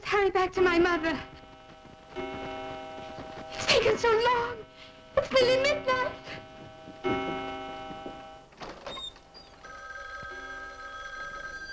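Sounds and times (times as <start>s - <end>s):
speech: 0.2s - 1.4s, 2.2s - 2.6s, 3.8s - 4.6s, 5.2s - 6.2s
telephone bell ringing in a doctor's house: 0.6s - 11.7s.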